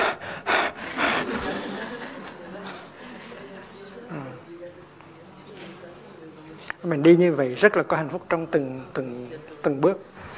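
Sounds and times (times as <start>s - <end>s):
voice imitating heavy panting of tourists climbing uphill: 0.0s - 2.2s
laughter: 0.0s - 3.8s
speech: 6.8s - 10.2s.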